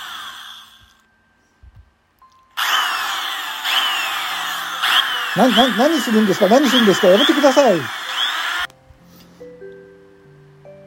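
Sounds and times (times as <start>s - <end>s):
loud electric drill grinding into a door to open it: 0.0s - 1.0s, 2.6s - 8.7s
speech: 5.4s - 8.0s.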